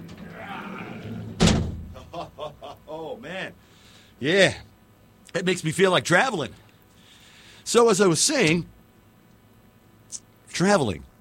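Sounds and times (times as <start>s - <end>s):
heavy door slamming shut: 0.0s - 2.0s
laughter: 2.0s - 3.4s
speech: 4.2s - 4.7s, 5.3s - 6.6s, 7.7s - 8.8s, 10.1s - 11.1s.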